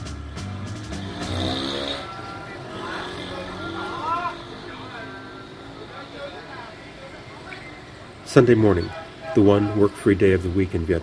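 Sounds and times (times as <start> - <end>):
street noise: 0.0 - 11.0
small moped engine revving as a rider sets off in Vietnam: 0.3 - 8.1
voices: 2.0 - 11.0
speech: 8.4 - 11.0.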